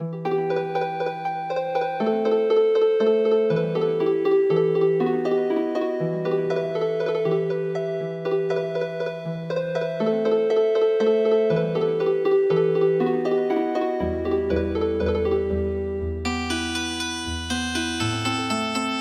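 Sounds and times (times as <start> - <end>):
healing harp music: 0.0 - 19.0.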